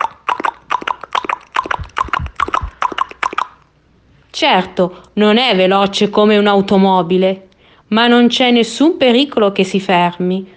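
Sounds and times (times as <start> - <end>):
horse hooves trotting: 0.4 - 3.4
speech: 4.4 - 10.5.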